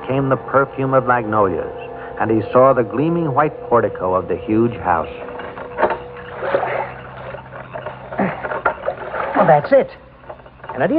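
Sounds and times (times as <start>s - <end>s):
steady low hum: 0.0s - 10.9s
speech: 0.1s - 5.3s, 9.5s - 10.0s, 10.8s - 10.9s
boat being poled through water lilies: 4.1s - 10.9s.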